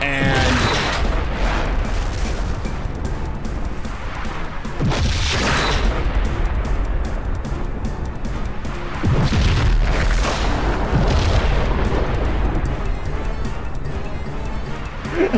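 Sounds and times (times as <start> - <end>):
constant low roar: 0.0 - 15.3
heavy explosions rumbling in a ravine: 0.2 - 8.0, 8.8 - 13.6.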